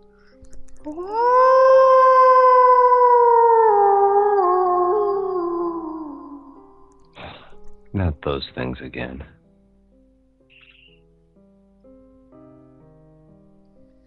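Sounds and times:
speech: 0.8 - 1.5, 8.2 - 9.4
wolf howling at the moon: 0.9 - 7.0.

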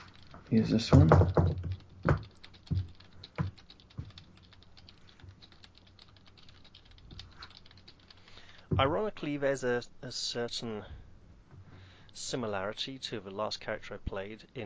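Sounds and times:
typing on a quiet computer keyboard: 0.0 - 8.7
speech: 0.5 - 1.5, 8.8 - 11.0, 12.2 - 14.6.

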